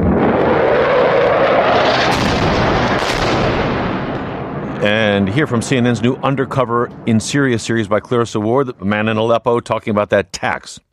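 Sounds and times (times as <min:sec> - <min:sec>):
bombs dropped by Russian military planes east of Damascus: 0:00.0 - 0:06.4
heavy fire east of Damascus: 0:00.3 - 0:04.7
speech: 0:04.8 - 0:10.9.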